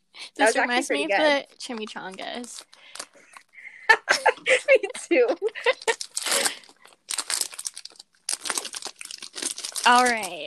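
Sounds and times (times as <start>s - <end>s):
speech: 0.4s - 3.0s, 3.9s - 6.0s, 9.8s - 10.4s
plastic food packaging crinkling while being handled and opened: 1.6s - 3.2s, 5.6s - 10.4s
laughter: 3.3s - 6.0s.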